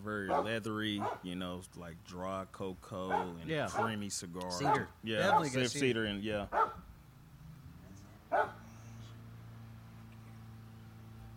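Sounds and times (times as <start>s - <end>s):
speech: 0.0s - 6.8s
single sharp loud dog bark: 0.3s - 1.2s, 3.1s - 4.0s, 4.6s - 5.6s, 6.5s - 6.8s, 8.3s - 8.6s.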